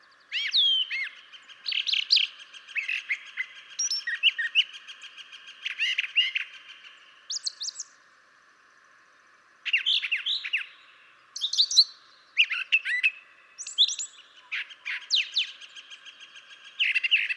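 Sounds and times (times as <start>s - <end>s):
brown thrasher singing varied sweeping high notes: 0.0s - 17.3s.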